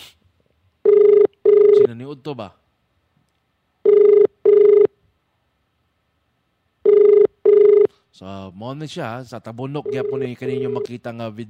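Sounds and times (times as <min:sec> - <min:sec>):
telephone ringback tone while a call is being placed: 0:00.8 - 0:01.9, 0:03.8 - 0:04.9, 0:06.8 - 0:07.9, 0:09.8 - 0:10.9
speech: 0:01.9 - 0:02.6, 0:08.2 - 0:11.4.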